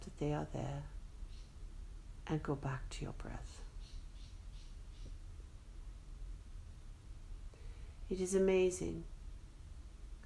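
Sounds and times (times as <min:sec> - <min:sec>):
steady low outdoor rumble: 0:00.0 - 0:10.2
speech: 0:00.1 - 0:01.0, 0:02.3 - 0:03.7, 0:08.1 - 0:09.1
faint bird chirps: 0:01.2 - 0:01.6, 0:03.6 - 0:05.3.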